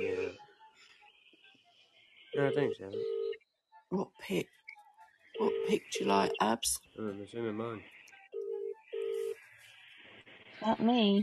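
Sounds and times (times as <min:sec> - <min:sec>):
mobile phone ringing with two electronic tones: 0:02.3 - 0:03.4, 0:05.4 - 0:06.6, 0:08.3 - 0:09.4
speech: 0:02.4 - 0:03.2, 0:03.9 - 0:04.6, 0:05.4 - 0:08.0, 0:10.6 - 0:11.2.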